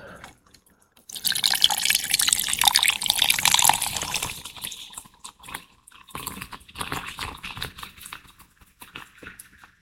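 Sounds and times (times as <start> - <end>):
small drips and pops: 0.3 - 9.8
cola pouring into a glass of rum and squeezed lime: 0.4 - 7.2
light crackling fizz of cola in a glass: 1.1 - 7.5.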